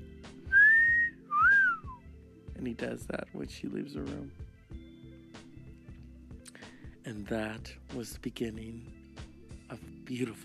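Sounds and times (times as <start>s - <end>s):
man whistling: 0.4s - 2.0s
speech: 2.6s - 4.4s, 7.1s - 9.0s, 9.7s - 10.4s.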